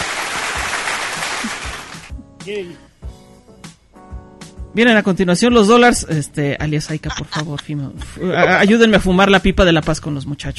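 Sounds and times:
crowd applause at a tenth-anniversary celebration: 0:00.0 - 0:02.1
speech: 0:02.4 - 0:02.9, 0:04.8 - 0:10.5
laughter: 0:07.0 - 0:08.5.

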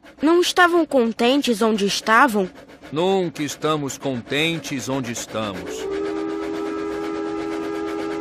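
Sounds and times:
rumbling hissing wash of a passing train: 0:00.0 - 0:08.1
speech: 0:00.2 - 0:06.0
lit train's steam whistle: 0:05.0 - 0:08.1.

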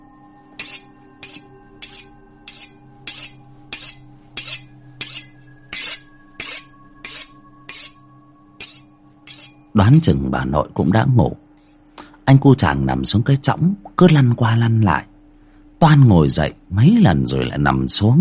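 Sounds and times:
sharp knife drawn across a whetstone: 0:00.6 - 0:08.0, 0:08.6 - 0:09.6, 0:11.6 - 0:11.8
speech: 0:09.8 - 0:11.4, 0:12.3 - 0:15.1, 0:15.8 - 0:18.2.

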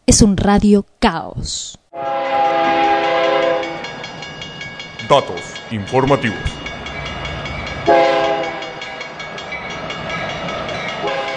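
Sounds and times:
speech: 0:00.1 - 0:03.4, 0:05.1 - 0:06.6, 0:07.9 - 0:08.2
passing train horn blast: 0:01.9 - 0:03.9, 0:07.8 - 0:08.8, 0:11.0 - 0:11.3
passing train steady rolling rumble: 0:02.2 - 0:11.3.

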